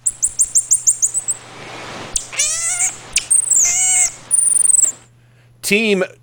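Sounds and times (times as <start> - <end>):
marmoset singing with high whistling bird-like calls: 0.0 - 5.1
speech: 5.7 - 6.2.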